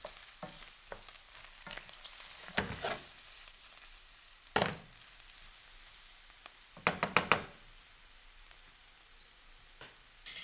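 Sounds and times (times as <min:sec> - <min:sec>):
onions sizzling in warm oil in a frying pan: 0:00.0 - 0:10.4
wooden spoon stirring onions in a frying pan: 0:01.7 - 0:03.1.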